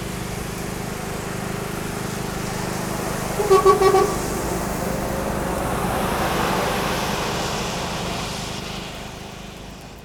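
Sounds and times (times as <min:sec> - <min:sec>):
rumble of traffic moving around a roundabout: 0:00.2 - 0:10.0
car horn honks from vehicles at a roundabout: 0:03.4 - 0:04.7.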